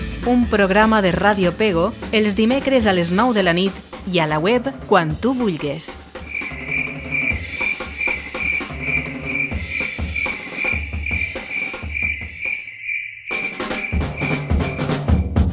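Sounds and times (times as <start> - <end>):
speech: 0.2 - 6.0
crickets chirping in a high trill: 6.2 - 15.4.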